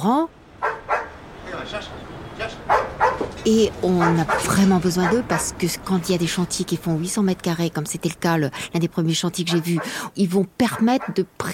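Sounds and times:
speech: 0:00.0 - 0:00.4, 0:01.7 - 0:11.5
Belgian Malinois dogs barking: 0:00.6 - 0:01.3, 0:02.4 - 0:05.6, 0:09.4 - 0:10.0, 0:10.6 - 0:11.3.

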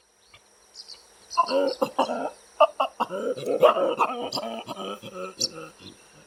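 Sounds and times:
steady hum: 0:00.0 - 0:06.2
male chacma baboon grunting and calling during mating: 0:01.4 - 0:06.2.

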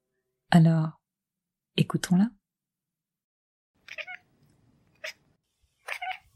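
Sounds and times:
speech: 0:00.6 - 0:01.0, 0:01.8 - 0:02.4
domestic cat meowing: 0:03.8 - 0:04.3, 0:05.0 - 0:05.2, 0:05.8 - 0:06.3.

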